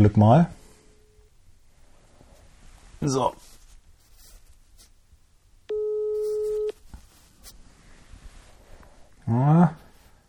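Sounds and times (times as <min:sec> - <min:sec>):
speech: 0:00.0 - 0:00.6, 0:03.0 - 0:03.5, 0:09.3 - 0:09.8
telephone ringback tone during outgoing call: 0:05.7 - 0:06.8.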